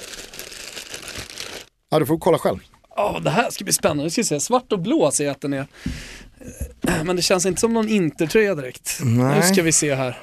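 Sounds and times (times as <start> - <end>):
plastic package crinkling and rustling while being unwrapped: 0.0 - 1.7
speech: 1.9 - 10.2.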